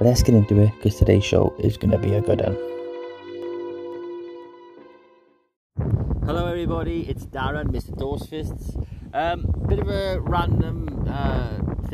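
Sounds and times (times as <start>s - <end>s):
speech: 0.0s - 2.7s, 6.3s - 11.9s
wind buffeting the microphone outdoors: 5.8s - 11.9s.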